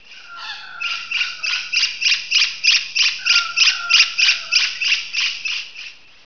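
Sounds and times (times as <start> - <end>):
bird calling in harsh buzzy notes: 0.0 - 6.2.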